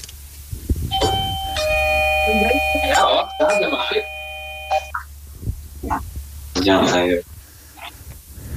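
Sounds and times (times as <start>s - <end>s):
electronic doorbell multi-tone chime: 0.9s - 5.0s
speech: 2.3s - 4.2s, 6.6s - 7.3s
voices talking: 2.3s - 4.2s.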